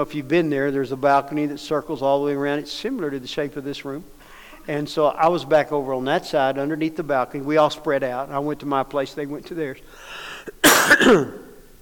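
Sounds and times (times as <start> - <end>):
speech: 0.0 - 10.2, 10.9 - 11.4
quiet noise: 0.0 - 11.7
harsh raspy cough from a person getting over a cough: 10.4 - 11.6.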